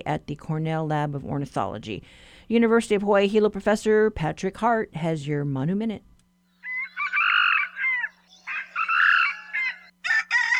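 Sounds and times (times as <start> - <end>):
speech: 0.0 - 6.1
short harsh red jungle fowl call bursts: 6.6 - 9.9
red jungle fowl crowing: 6.6 - 10.5.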